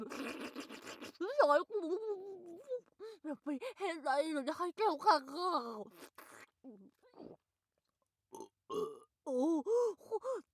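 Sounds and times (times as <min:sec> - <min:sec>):
speech: 0:01.4 - 0:02.2, 0:03.2 - 0:07.4, 0:08.3 - 0:10.5
throaty burps brought on by sucking on snot: 0:08.3 - 0:09.1.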